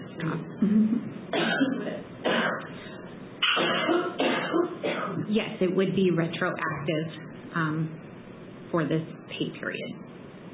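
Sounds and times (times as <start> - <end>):
speech: 0.2 - 2.0, 5.3 - 8.0, 8.7 - 10.1
coughs from one person: 0.6 - 5.2.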